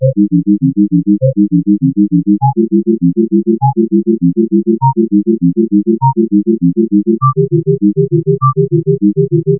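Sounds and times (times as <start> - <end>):
sine tone: 0.0 - 9.5.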